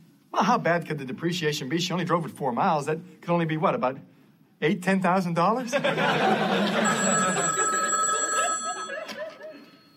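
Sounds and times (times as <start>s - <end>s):
speech: 0.4s - 7.7s
laughter: 5.6s - 9.8s
telephone ringing with electronic trill: 6.2s - 9.9s.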